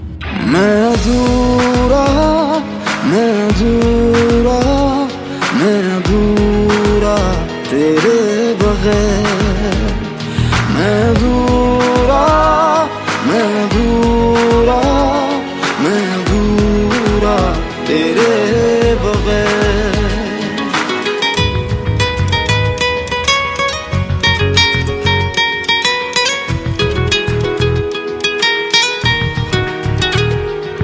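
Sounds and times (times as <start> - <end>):
Bollywood romantic ringtone melody: 0.5 - 30.8.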